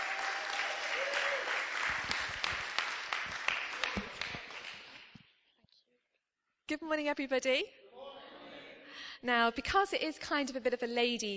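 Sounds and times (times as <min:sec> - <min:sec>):
crowd applauding: 0:00.0 - 0:05.2
speech: 0:06.7 - 0:07.8, 0:09.2 - 0:11.3.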